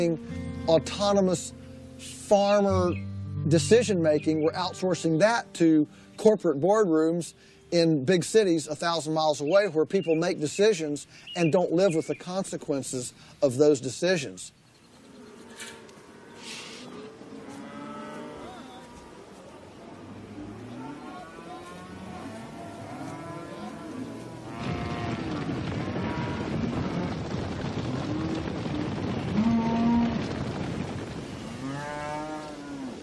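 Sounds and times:
speech: 0:00.0 - 0:14.6
herd of grass-fed cattle mooing: 0:15.1 - 0:27.1, 0:29.4 - 0:30.2, 0:31.5 - 0:33.0
wind rumble: 0:23.8 - 0:33.0.

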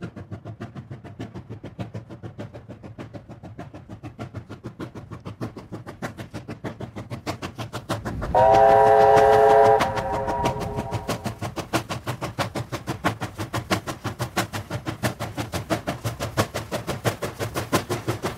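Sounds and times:
steam locomotive chuffing while hauling a loaded coal train: 0:00.0 - 0:18.3
long shrill steam locomotive whistle: 0:08.2 - 0:11.5.

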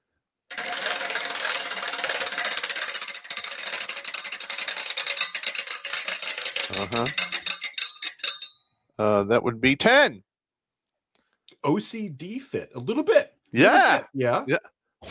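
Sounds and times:
spinning prize wheel ratcheting in a game segment: 0:00.5 - 0:08.6
speech: 0:06.7 - 0:07.2, 0:09.0 - 0:10.3, 0:11.6 - 0:14.7.

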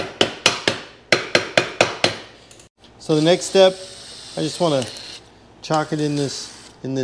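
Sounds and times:
hammer tapping down sharp edges: 0:00.0 - 0:02.3
speech: 0:03.1 - 0:05.0, 0:05.6 - 0:07.0.

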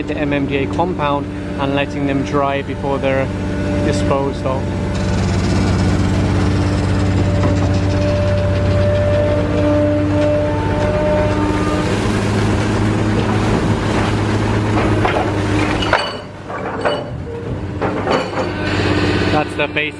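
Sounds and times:
speech: 0:00.0 - 0:05.0, 0:19.6 - 0:19.9
backhoe engine droning while pulling up water lilies: 0:00.0 - 0:19.9
clanking: 0:04.8 - 0:18.8.

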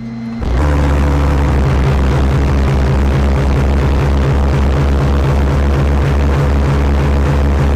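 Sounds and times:
pulse jet engines on a boat roaring: 0:00.0 - 0:07.7.

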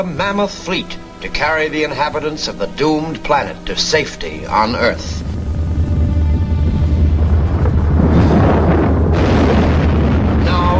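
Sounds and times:
speech: 0:00.0 - 0:05.3
underground gas pockets exploding and volcanoes erupting in a deep roaring rumble: 0:04.9 - 0:10.7.

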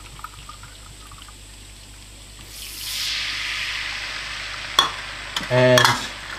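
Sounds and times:
white wine poured into a pan of bubbling garlic, sizzling: 0:02.1 - 0:06.3.

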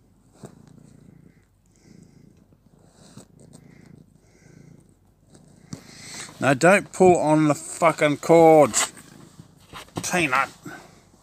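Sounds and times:
small soft rustles and bumps: 0:00.0 - 0:01.5, 0:04.8 - 0:11.2
cat purring: 0:00.0 - 0:11.2
speech: 0:06.4 - 0:08.8, 0:10.1 - 0:10.6.

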